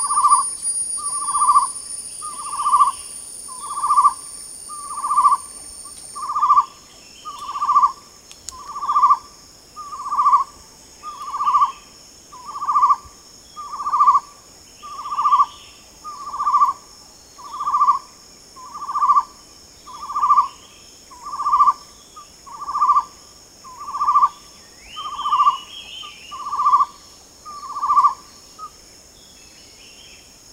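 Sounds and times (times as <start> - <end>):
chestnut-necklaced partridge whistled note: 0.0 - 6.6
insects droning at high pitch: 0.0 - 30.5.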